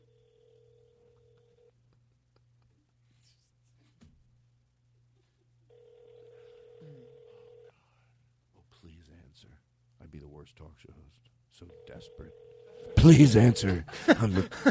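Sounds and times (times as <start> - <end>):
telephone ringback tone on an outgoing call to a cell phone: 0.0 - 1.7, 5.7 - 7.7, 11.7 - 13.8
speech: 9.3 - 14.6
laughter: 13.2 - 14.6.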